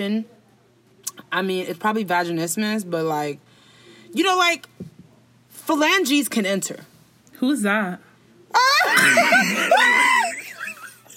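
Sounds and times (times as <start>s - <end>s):
speech: 0.0s - 0.4s, 1.3s - 3.5s, 4.1s - 4.9s, 5.7s - 10.2s
laughter: 8.6s - 11.1s
person screaming: 9.7s - 10.4s.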